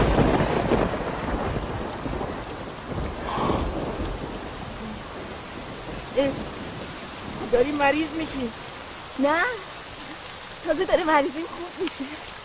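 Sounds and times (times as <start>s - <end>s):
low roll of thunder: 0.0s - 8.6s
steady rain pouring in a dense hissing wash: 0.0s - 12.4s
speech: 7.6s - 8.6s, 9.2s - 9.7s, 10.6s - 12.4s.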